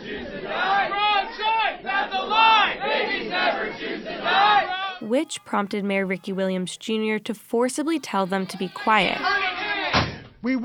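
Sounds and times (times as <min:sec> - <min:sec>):
crowd of protesters shouting over each other: 0:00.1 - 0:05.0
speech: 0:05.0 - 0:09.4, 0:10.4 - 0:10.6.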